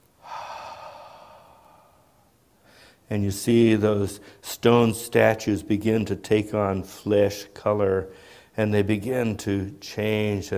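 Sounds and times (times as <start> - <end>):
voice imitating a deep breath: 0.2 - 3.0
speech: 3.1 - 10.5.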